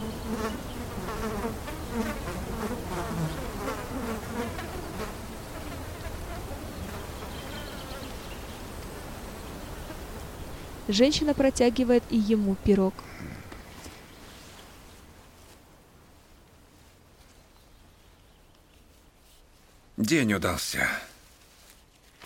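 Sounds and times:
flies buzzing over a boy's body: 0.0s - 15.0s
speech: 10.9s - 13.3s, 20.1s - 21.1s.

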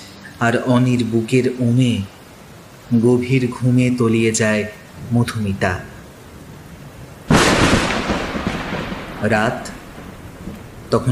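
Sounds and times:
heavy rain hissing at night: 0.0s - 11.0s
speech: 0.4s - 2.2s, 2.9s - 5.9s, 9.2s - 9.8s
thunder crash during heavy rain at night: 7.3s - 11.0s.

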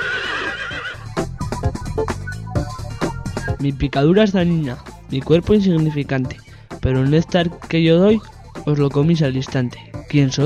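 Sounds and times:
horse neighing: 0.0s - 1.0s
speech: 3.6s - 10.4s.

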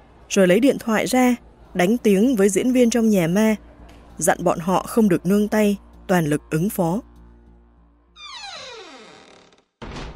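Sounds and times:
speech: 0.3s - 7.1s
large entrance door of a haunted house creaking shut: 8.2s - 10.1s.

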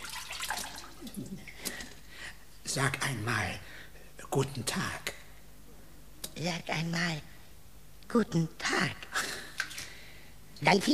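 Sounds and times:
water dripping: 0.0s - 1.8s
speech: 2.8s - 3.7s, 4.3s - 5.1s, 6.4s - 7.3s, 8.1s - 9.1s, 10.6s - 10.9s.

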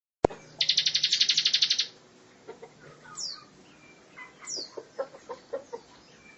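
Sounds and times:
lovebird sharp downward chirps: 0.2s - 2.0s
lovebird trilling in a fast buzzy long trill: 0.3s - 2.0s, 3.0s - 5.1s.

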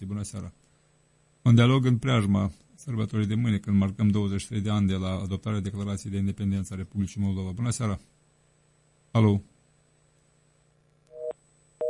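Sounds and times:
speech: 0.0s - 0.7s, 1.4s - 8.1s, 9.1s - 9.5s
telephone busy tone after caller disconnects: 11.1s - 11.8s.

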